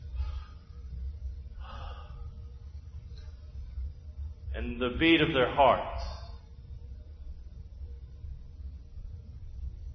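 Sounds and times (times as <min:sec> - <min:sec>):
soft deep breathing: 0:00.0 - 0:03.7
low steady rumble: 0:00.0 - 0:09.9
speech: 0:04.6 - 0:06.1.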